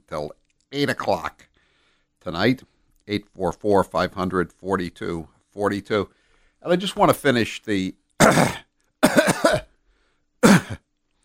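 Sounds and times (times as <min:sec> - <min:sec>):
speech: 0:00.1 - 0:01.5, 0:02.2 - 0:08.6
person coughing harshly: 0:08.2 - 0:09.7, 0:10.4 - 0:10.9.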